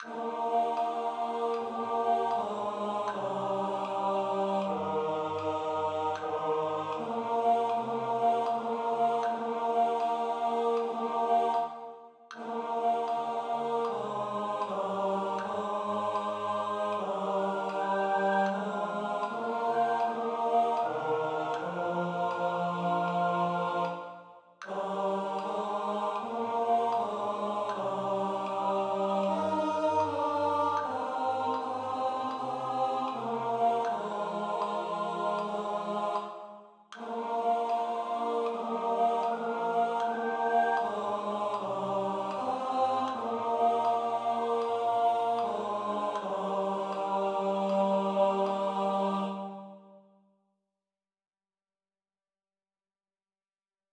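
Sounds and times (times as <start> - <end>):
tenor singing: 0.0 - 49.7.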